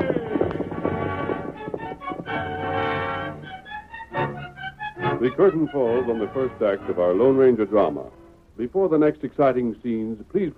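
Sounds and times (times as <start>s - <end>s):
horses galloping off: 0.0s - 3.4s
orchestral music bed: 0.0s - 8.4s
speech: 5.2s - 10.5s.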